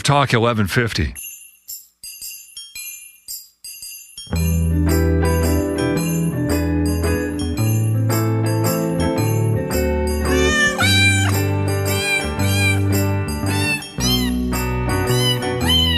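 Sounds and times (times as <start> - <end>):
speech: 0.0 - 1.3
steady bouncing bass and bright backing music: 4.3 - 15.9
cat meows strung into a festive Christmas jingle: 10.3 - 14.5.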